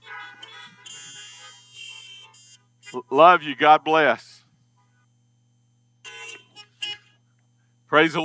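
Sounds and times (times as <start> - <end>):
car horns honking in a drive-in crowd: 0.0 - 3.4, 6.0 - 7.2
speech: 2.9 - 4.3, 7.9 - 8.2.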